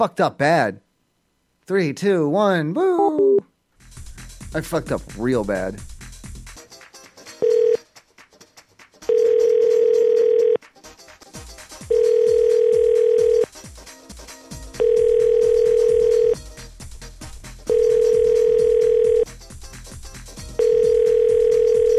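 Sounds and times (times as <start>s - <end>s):
speech: 0.0s - 0.8s, 1.7s - 3.2s, 4.5s - 5.9s
telephone ringback tone while calling a restaurant: 7.4s - 7.8s, 9.1s - 10.6s, 11.9s - 13.5s, 14.8s - 16.4s, 17.7s - 19.3s, 20.6s - 21.9s.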